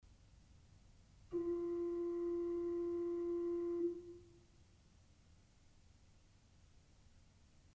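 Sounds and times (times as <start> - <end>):
organ pipes of a Principal 4' stop playing F: 1.3 - 4.3.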